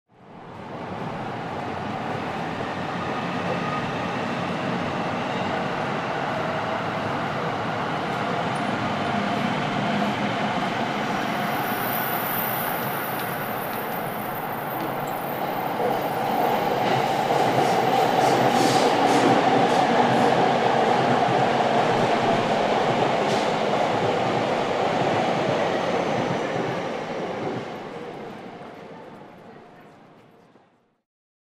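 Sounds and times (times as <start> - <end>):
subway train: 0.1 - 31.0.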